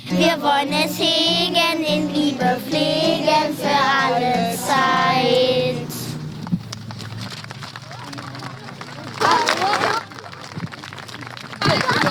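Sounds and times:
speech: 0.0 - 5.9
laughter: 0.0 - 6.5, 7.8 - 12.0
audience applauding children after a song: 0.0 - 12.0
crowd murmur: 0.0 - 12.0.

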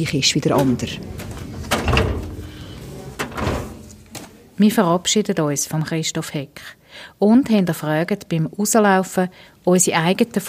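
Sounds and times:
speech: 0.0 - 1.3, 4.6 - 10.4
hanging-file drawer sliding open and shut on metal glides: 0.5 - 4.5.

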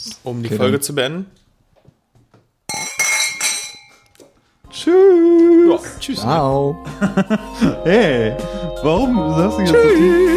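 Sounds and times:
speech: 0.0 - 1.4, 4.8 - 10.3
beer glasses clinking together in a toast: 2.7 - 4.1
laughter: 6.8 - 8.0.

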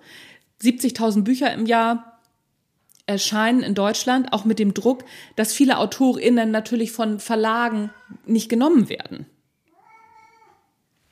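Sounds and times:
speech: 0.6 - 2.1, 3.1 - 9.3
male cat meowing: 9.7 - 10.7.

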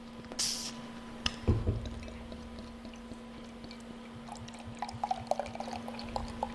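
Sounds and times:
faint steady hum: 0.0 - 6.5
pilsner beer pouring from a large bottle: 1.5 - 6.5.

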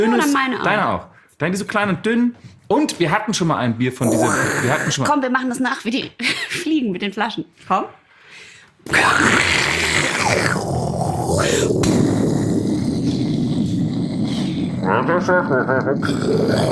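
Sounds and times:
speech: 0.0 - 8.0, 8.8 - 9.6, 11.4 - 12.0, 14.8 - 16.7
person imitating a hissing tiger: 4.0 - 5.1, 8.9 - 16.7.

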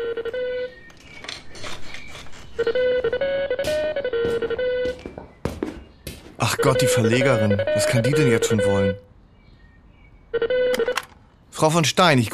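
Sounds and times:
telephone ringing with a bright electronic ringtone melody: 0.0 - 0.9, 2.6 - 5.0, 6.4 - 9.1, 10.3 - 11.1
speech: 2.6 - 3.4, 6.5 - 9.1, 11.6 - 12.3.

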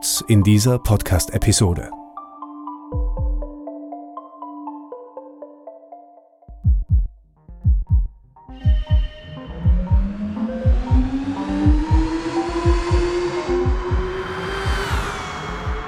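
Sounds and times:
speech: 0.1 - 2.0
thumping beat: 3.0 - 3.5, 6.6 - 15.8
short tonal musical intro: 8.5 - 15.8
electric sports car motor whine accelerating hard: 8.9 - 15.8.

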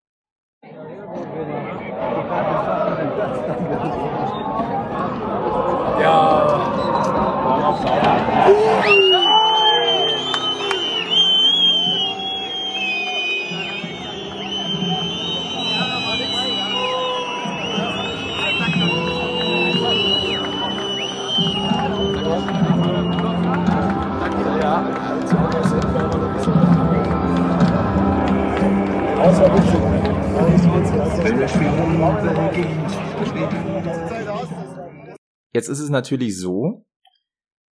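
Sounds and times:
stadium crowd of football fans cheering after the final whistle: 1.8 - 34.3
football fans whooping and shouting: 6.0 - 23.6
speech: 35.6 - 36.9.

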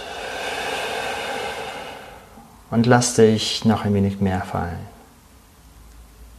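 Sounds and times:
deep exhalation in a guided meditation: 0.0 - 2.7
speech: 2.7 - 4.9.

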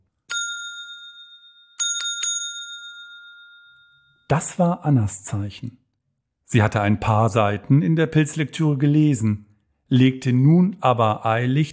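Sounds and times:
servant's pull-cord call bell ringing: 0.2 - 4.3
speech: 4.3 - 5.8, 6.5 - 11.7.

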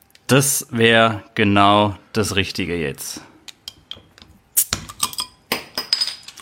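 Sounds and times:
speech: 0.3 - 3.3
glasses with beer and soft drinks clinking in a toast: 4.8 - 6.3.

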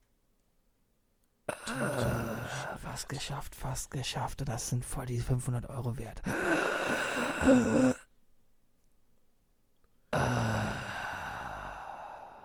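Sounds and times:
speech: 1.7 - 8.0
heavy forceful breaths through the mouth in a breathing exercise: 6.3 - 8.0, 10.2 - 12.4.

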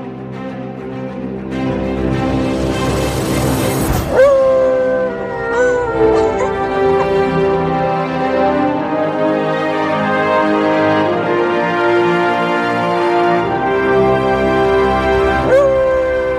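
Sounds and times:
sustained instrumental music played by an orchestra musician: 0.0 - 16.3
dog howling: 4.1 - 7.4, 15.4 - 16.3.

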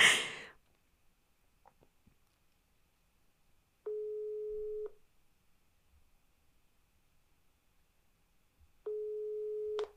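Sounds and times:
ringback tone of a telephone ringing unanswered during a call: 3.9 - 4.9, 8.9 - 9.9.

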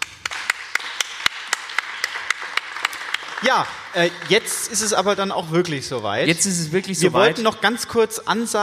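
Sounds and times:
audience applauding: 0.0 - 5.6
one pair of hands striking sharp claps: 0.0 - 6.1
speech: 3.4 - 8.6.

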